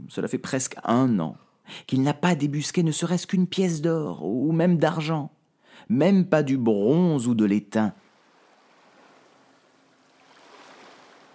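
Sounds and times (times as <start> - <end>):
speech: 0.1 - 8.0
huge sea waves crashing against rocks below a high cliff: 8.0 - 11.3.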